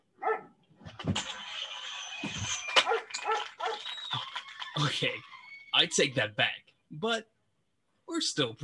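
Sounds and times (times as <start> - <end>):
dog barking: 0.2 - 0.6, 2.8 - 3.8
speech: 1.0 - 1.4, 4.8 - 5.2, 5.8 - 7.3, 8.1 - 8.6.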